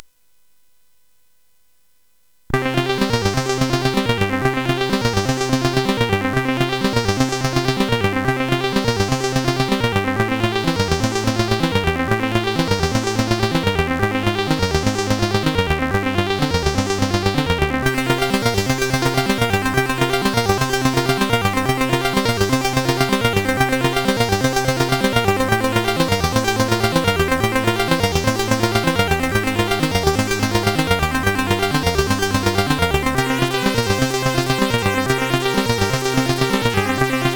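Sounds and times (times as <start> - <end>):
intro music: 2.6 - 37.3.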